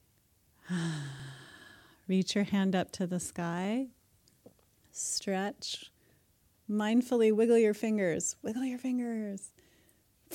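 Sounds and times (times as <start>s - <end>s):
deep breath with slight voiced hum in a children's mindfulness exercise: 0.6s - 2.0s
speech: 0.7s - 1.1s, 2.1s - 4.0s, 5.0s - 6.0s, 6.7s - 9.5s.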